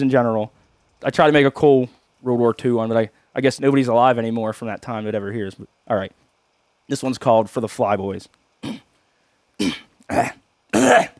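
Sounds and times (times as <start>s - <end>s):
speech: 0.0s - 6.2s, 6.9s - 8.8s, 9.6s - 11.1s
throat clearing: 8.6s - 8.9s, 9.6s - 11.1s.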